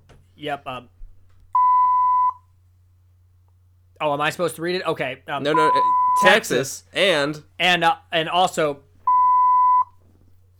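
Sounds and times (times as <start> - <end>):
faint low hum: 0.0 - 10.5
speech: 0.4 - 1.0, 4.0 - 8.9
censor bleep tone: 1.6 - 2.4, 5.5 - 6.4, 9.1 - 9.9.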